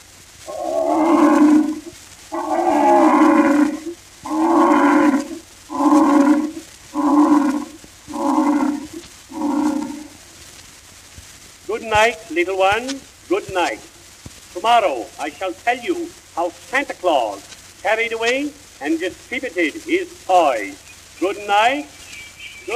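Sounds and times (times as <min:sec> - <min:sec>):
lion roaring: 0:00.5 - 0:10.2
speech: 0:12.0 - 0:13.9, 0:14.6 - 0:22.0.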